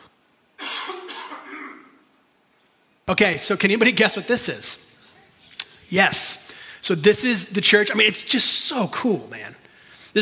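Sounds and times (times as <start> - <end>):
harsh cough: 0.6 - 2.0
speech: 3.1 - 4.9, 5.9 - 10.2.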